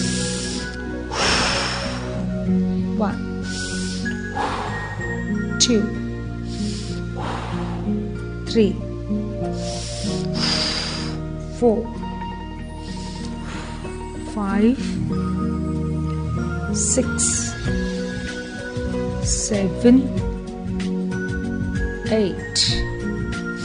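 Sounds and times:
person breathing in and exhaling through the mouth during a guided seated exercise: 0.0s - 2.4s, 3.4s - 5.4s, 6.3s - 8.2s, 9.4s - 11.3s, 12.6s - 14.1s, 17.5s - 18.8s
steady tonal background: 0.0s - 23.6s.

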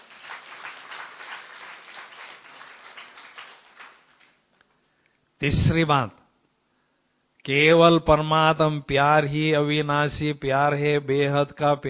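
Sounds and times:
crowd clapping: 0.0s - 4.5s
speech: 5.4s - 6.2s, 7.4s - 11.8s.

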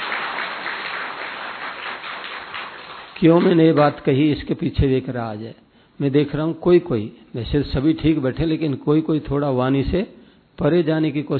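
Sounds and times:
audience applauding during a talk: 0.0s - 3.6s
speech: 3.2s - 11.3s.

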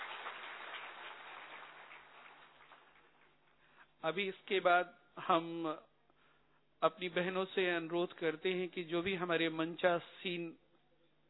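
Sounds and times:
crowd applauding with many hands clapping: 0.0s - 3.4s
speech: 4.0s - 5.9s, 6.8s - 10.6s.

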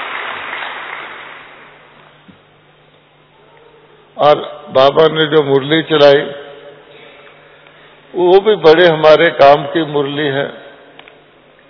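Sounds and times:
applause from a gathered audience: 0.0s - 1.8s
speech: 4.2s - 6.4s, 8.2s - 10.6s.

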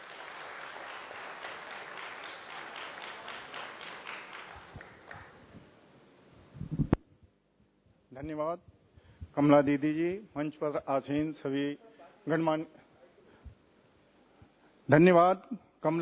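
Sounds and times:
faint applause from an audience at a ceremony welcoming a guest: 0.0s - 5.4s
speech: 8.2s - 8.7s, 9.4s - 12.8s, 14.9s - 16.0s.

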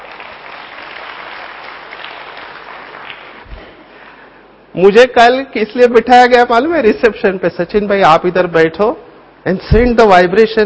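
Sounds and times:
audience applauding at a gathering: 0.0s - 3.5s
speech: 4.8s - 10.6s.

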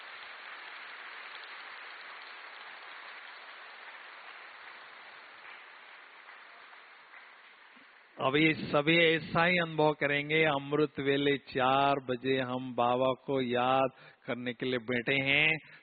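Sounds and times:
audience applauding loudly: 0.0s - 8.1s
speech: 8.2s - 15.8s.

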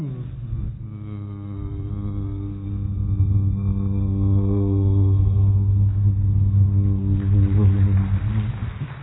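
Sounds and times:
passenger airplane flying overhead with deep engine drone: 0.7s - 8.9s.

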